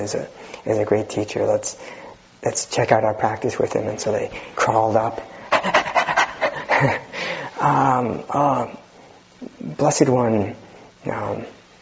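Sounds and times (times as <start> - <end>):
speech: 0.0 - 5.8, 6.8 - 8.8, 9.6 - 11.6
person imitating a panting dog: 5.4 - 7.1.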